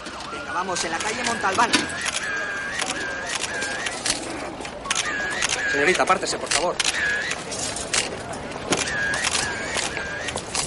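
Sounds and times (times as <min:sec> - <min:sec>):
traffic rumbling: 0:00.0 - 0:10.6
speech: 0:00.5 - 0:02.4, 0:05.7 - 0:07.3
camera shutter clicks from press photographers: 0:01.0 - 0:04.2, 0:04.9 - 0:05.8, 0:06.4 - 0:08.1, 0:08.7 - 0:10.6.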